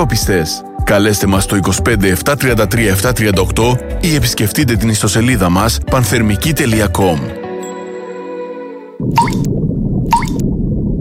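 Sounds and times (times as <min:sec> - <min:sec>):
speech: 0:00.0 - 0:07.4, 0:09.0 - 0:09.4
water dripping from a leak: 0:09.0 - 0:11.0.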